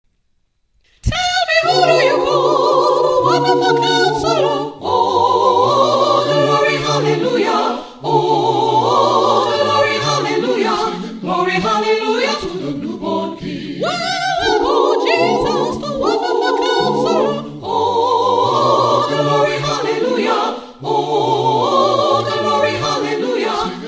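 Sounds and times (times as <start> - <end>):
SATB choir rehearsing: 1.0 - 23.8.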